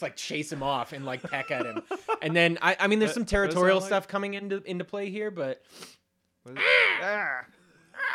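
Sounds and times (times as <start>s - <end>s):
speech: 0.0s - 8.1s
laughter: 0.6s - 3.3s
person imitating seagull squawks: 6.6s - 8.1s.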